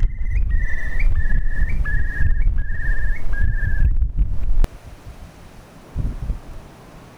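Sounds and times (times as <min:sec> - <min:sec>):
Eurasian curlew giving clear whistled notes in the Yorkshire Dales: 0:00.0 - 0:07.1
heavy low wind rumble in the Yorkshire Dales: 0:00.0 - 0:07.1.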